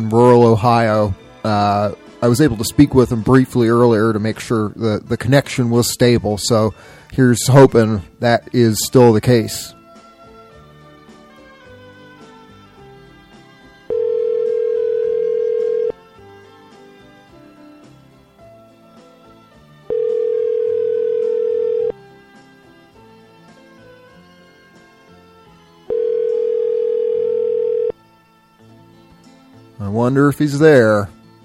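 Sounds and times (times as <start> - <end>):
speech: 0.0 - 9.8, 30.1 - 31.2
telephone ringback tone of an outgoing call: 13.9 - 16.0, 19.9 - 22.0, 25.9 - 28.0.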